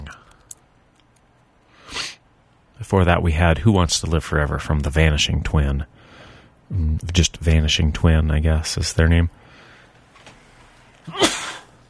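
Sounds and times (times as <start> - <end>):
speech: 2.8 - 6.0, 6.7 - 9.4
sneeze: 11.1 - 11.8.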